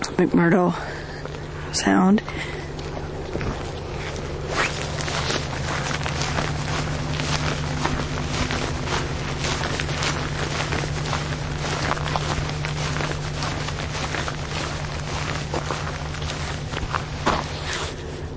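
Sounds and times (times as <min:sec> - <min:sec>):
constant low hum: 0:00.0 - 0:18.3
speech: 0:00.2 - 0:00.9, 0:01.7 - 0:02.6
footsteps crunching along the snowy shore of McMurdo Sound in Antarctica: 0:02.3 - 0:18.3.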